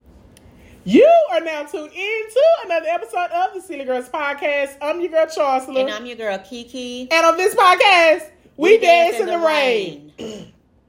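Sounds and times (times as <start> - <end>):
speech: 0.8 - 10.5
woman clearing her throat in a rasping rumble: 10.1 - 10.6.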